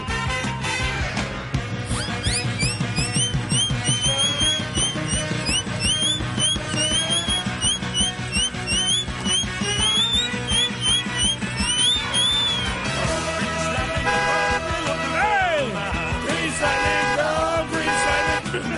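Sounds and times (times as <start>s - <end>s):
bouncy backing track with a thumping beat: 0.0s - 17.8s
comic whistle slides: 1.9s - 12.8s.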